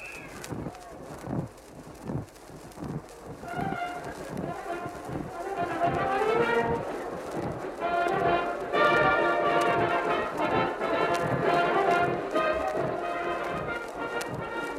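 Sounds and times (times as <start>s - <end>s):
circus cavalry horses' hooves walking around a circus ring: 0.0s - 14.7s
band music: 3.5s - 14.7s.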